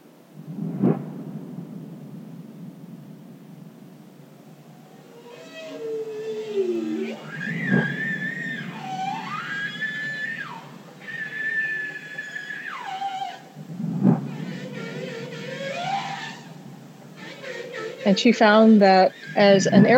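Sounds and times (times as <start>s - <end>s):
steady low underwater rumble: 0.3s - 11.6s, 13.4s - 19.9s
deep booming pulses: 0.3s - 12.3s, 12.9s - 19.9s
bowhead whale tonal moans and whoops recorded underwater: 4.4s - 19.9s
speech: 18.1s - 19.9s.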